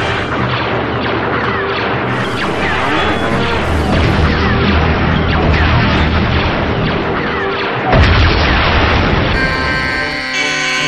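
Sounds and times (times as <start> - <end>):
space cruiser exploding from gunfire in a video game: 0.1 - 9.4
steady buzzing alarm-like tone in a video game: 2.1 - 5.3, 9.4 - 10.8.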